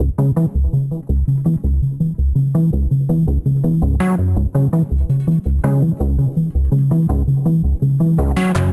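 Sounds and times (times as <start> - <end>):
chasing bass line in C sharp minor: 0.0 - 8.7.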